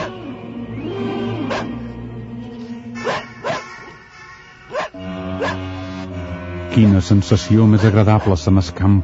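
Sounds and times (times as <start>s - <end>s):
speech: 1.0s - 1.8s, 6.8s - 9.0s
distant dog from a flock barking at nightfall in fog: 1.5s - 1.8s, 3.0s - 3.8s, 4.7s - 5.7s.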